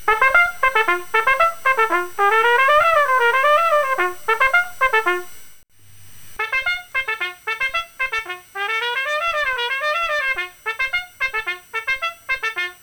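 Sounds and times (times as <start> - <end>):
muted brass instrument: 0.0 - 12.8.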